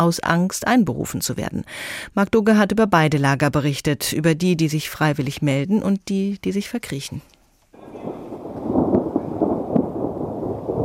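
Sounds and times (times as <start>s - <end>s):
speech: 0.0s - 7.4s
deep thunder rumbling: 7.8s - 10.8s.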